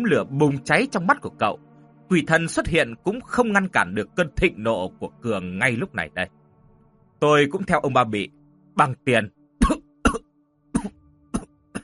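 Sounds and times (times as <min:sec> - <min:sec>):
speech: 0:00.0 - 0:06.4, 0:07.2 - 0:09.8
man with tuberculosis coughing: 0:09.6 - 0:10.2, 0:10.8 - 0:11.8.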